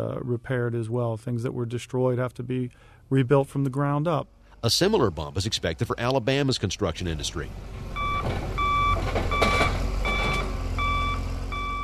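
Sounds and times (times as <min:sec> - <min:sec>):
speech: 0:00.0 - 0:08.5
low engine rumble of a debris knuckle truck: 0:04.1 - 0:11.8
clanks and scraping of heavy equipment picking up tree trunks: 0:07.5 - 0:10.8
debris knuckle truck backup alarm beeping: 0:07.9 - 0:11.8.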